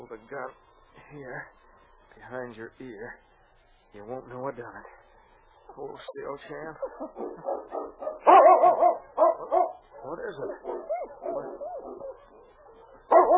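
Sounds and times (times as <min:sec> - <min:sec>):
sled dog team barking and yipping: 0:00.0 - 0:13.3
speech: 0:00.1 - 0:03.3, 0:03.9 - 0:05.0, 0:05.7 - 0:12.3
sled dogs whining and howling: 0:05.9 - 0:13.3.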